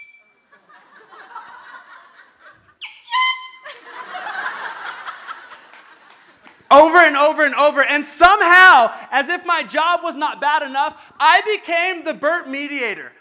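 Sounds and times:
chuckling and laughter: 0.5 - 2.9, 3.6 - 6.4
voice imitating a loud air horn blasting at golfers mid-backswing: 2.8 - 3.7
speech: 6.7 - 13.1.

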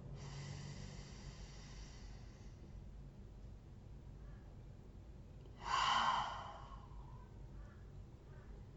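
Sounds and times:
deep breathing in through the nose and out through the mouth during a guided breathing exercise: 0.0 - 2.9, 5.5 - 7.2.

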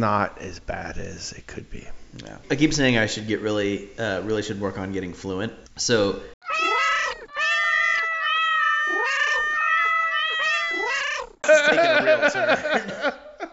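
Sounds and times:
speech: 0.0 - 6.3
cat meowing: 6.4 - 11.4
laughter: 11.4 - 13.5.

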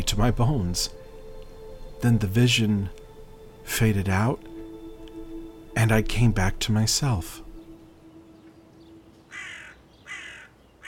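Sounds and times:
speech: 0.1 - 1.1, 2.0 - 3.0, 3.7 - 4.5, 5.8 - 7.4
crows cawing: 9.2 - 10.8.

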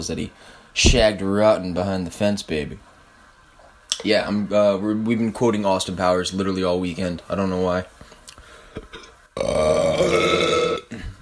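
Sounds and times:
speech: 0.0 - 2.9, 4.0 - 8.0, 8.8 - 10.4
loud drawn-out burp: 9.4 - 11.2.

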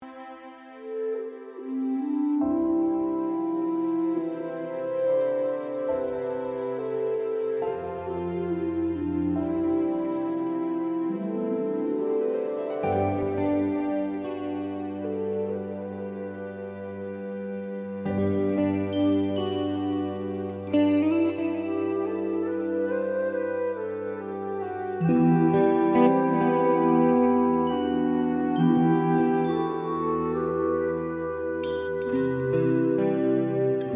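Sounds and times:
slow romantic orchestral music: 0.0 - 33.9
clean guitar: 12.9 - 33.9.

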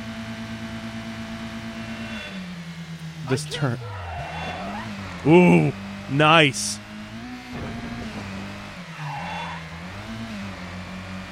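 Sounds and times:
video game car engine droning hum: 0.0 - 11.2
speech: 3.3 - 4.0, 5.2 - 6.8
video game car tire squeal: 3.3 - 6.1, 6.9 - 10.8.

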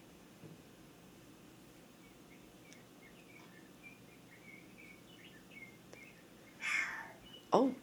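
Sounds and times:
northern saw-whet owl whistled notes: 2.1 - 7.5
northern saw-whet owl high-pitched raspy squeal: 6.6 - 7.2
speech: 7.5 - 7.8.

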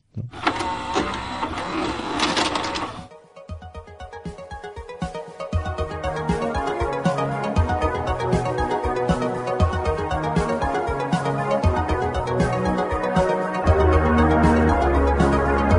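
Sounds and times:
music: 0.0 - 15.7
cassette tape mechanism loading: 0.3 - 3.1.

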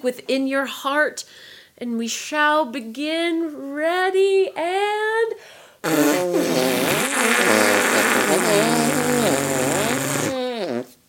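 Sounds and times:
speech: 0.0 - 10.0
two people making arm fart sounds as a musical duet: 5.8 - 11.0.

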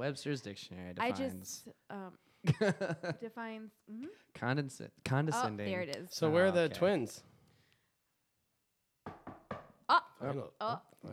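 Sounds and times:
speech: 0.0 - 7.3, 10.2 - 11.1
sharp knocks on a door: 9.0 - 9.8.

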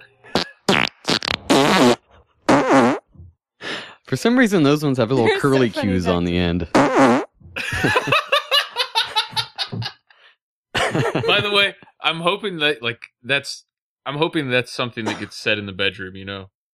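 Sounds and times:
recorded farts played back: 0.4 - 3.1, 6.7 - 7.4
speech: 4.1 - 7.2, 11.4 - 16.6
laughter: 4.7 - 6.6, 7.6 - 10.0, 10.8 - 12.9, 14.4 - 15.9.

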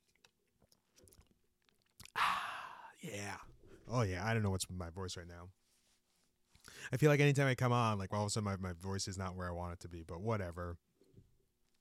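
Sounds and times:
person sipping a drink: 0.1 - 3.0
breathy burst at the mic: 2.2 - 3.0
speech: 3.0 - 5.6, 6.9 - 10.8.

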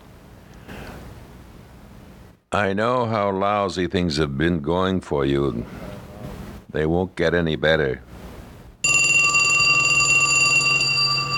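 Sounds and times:
speech: 2.5 - 5.8, 6.7 - 8.1
telephone bell ringing: 8.8 - 11.3.

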